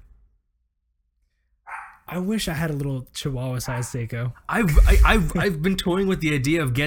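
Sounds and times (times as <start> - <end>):
happy female dog barking: 1.7 - 2.1
speech: 2.1 - 6.8
faint low rumble: 4.6 - 5.7.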